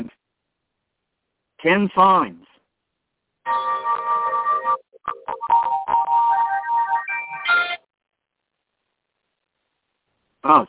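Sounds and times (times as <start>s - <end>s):
speech: 1.6s - 2.4s, 10.4s - 10.6s
electronic alarm playing melodic synthesized tones: 3.5s - 7.8s.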